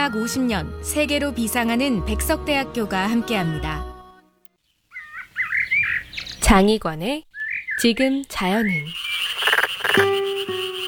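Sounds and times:
speech: 0:00.0 - 0:03.9, 0:06.5 - 0:09.1, 0:09.9 - 0:10.3
black-spotted pond frog croaking: 0:04.9 - 0:06.4, 0:08.6 - 0:10.8.

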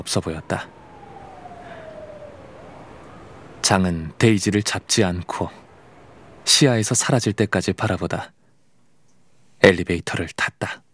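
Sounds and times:
speech: 0:00.0 - 0:00.8, 0:03.7 - 0:05.6, 0:06.4 - 0:08.4, 0:09.6 - 0:10.8
faint police car siren wailing: 0:00.0 - 0:07.1
steady noise: 0:00.0 - 0:10.9.

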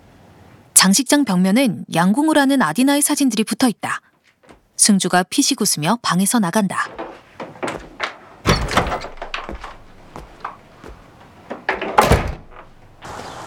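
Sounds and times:
speech: 0:00.8 - 0:04.1, 0:04.8 - 0:07.0
house front gate being opened with heavy thunks and knocks: 0:06.9 - 0:13.2.

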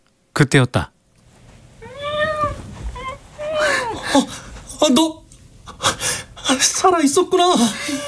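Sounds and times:
speech: 0:00.4 - 0:00.9, 0:04.1 - 0:05.2, 0:05.8 - 0:08.0
cat meowing: 0:01.8 - 0:04.8.

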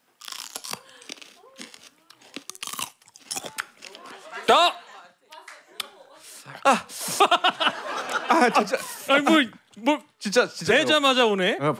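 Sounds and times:
biting and crunching a hot green chili pepper: 0:00.2 - 0:04.1
chewing snaps of a hot green chili pepper: 0:00.2 - 0:04.1
laughter: 0:03.8 - 0:09.6
speech: 0:06.6 - 0:07.5, 0:08.4 - 0:11.7.

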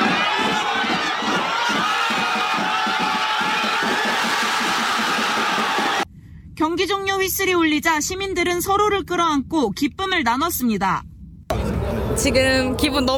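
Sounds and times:
large crowd roaring and cheering outdoors in a public square: 0:00.0 - 0:06.0
speech: 0:06.8 - 0:11.1, 0:12.2 - 0:13.1.

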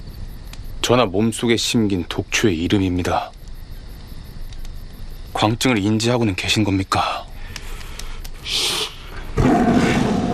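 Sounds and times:
speech: 0:00.8 - 0:03.4, 0:05.4 - 0:07.2
tiger's rough breathy burst: 0:07.3 - 0:10.3
tiger roaring: 0:09.4 - 0:10.3.

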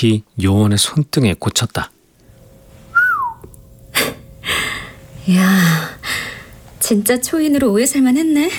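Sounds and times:
speech: 0:00.0 - 0:02.0, 0:05.3 - 0:08.5
person giving a short downward-sliding whistle: 0:02.9 - 0:03.4
breathy, hissing exhales: 0:04.0 - 0:06.6.

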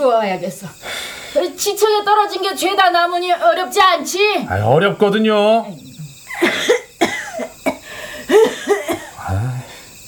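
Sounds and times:
speech: 0:00.0 - 0:06.8
harsh hacking coughs: 0:06.3 - 0:09.7.

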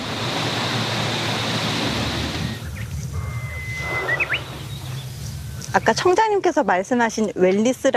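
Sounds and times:
strong wind rustling forest tree leaves: 0:00.0 - 0:07.9
bird chirps: 0:02.5 - 0:06.0
speech: 0:05.8 - 0:07.9.

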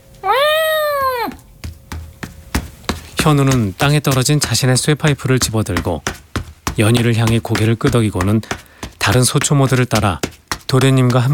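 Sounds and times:
cat meowing loudly: 0:00.2 - 0:01.4
speech: 0:03.2 - 0:06.2, 0:06.8 - 0:11.3.

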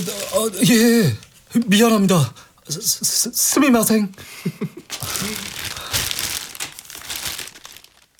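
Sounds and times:
plastic bag crinkling while being handed over: 0:00.0 - 0:01.4, 0:04.8 - 0:08.1
speech: 0:00.0 - 0:05.5.

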